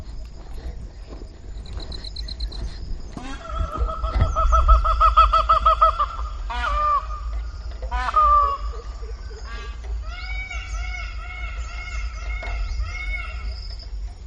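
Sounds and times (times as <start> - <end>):
Pavo cristatus Indian peafowl calling: 1.8 - 13.8.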